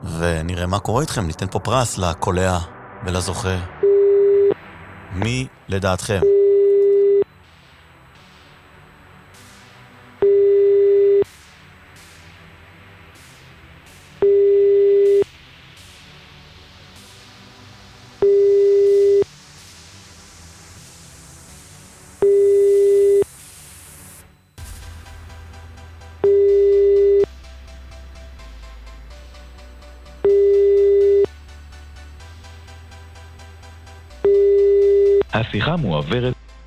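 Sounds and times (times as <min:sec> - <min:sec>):
faint music: 0:00.0 - 0:36.6
speech: 0:00.2 - 0:03.8, 0:05.1 - 0:06.3, 0:35.7 - 0:36.4
hum: 0:02.7 - 0:11.4, 0:14.2 - 0:15.3, 0:18.0 - 0:19.2, 0:22.2 - 0:23.2, 0:24.6 - 0:35.5
telephone ringback tone beeps: 0:03.8 - 0:04.6, 0:05.2 - 0:07.2, 0:10.2 - 0:11.3, 0:14.2 - 0:15.2, 0:18.2 - 0:19.2, 0:22.2 - 0:23.2, 0:26.2 - 0:27.3, 0:30.2 - 0:31.3, 0:34.2 - 0:35.3.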